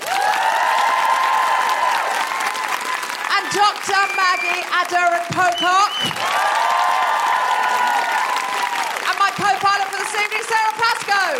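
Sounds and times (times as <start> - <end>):
whoop or cheer: 0.0 - 4.6, 5.9 - 9.0
large audience applauding: 0.0 - 11.3
speech: 3.5 - 6.7, 9.4 - 11.3.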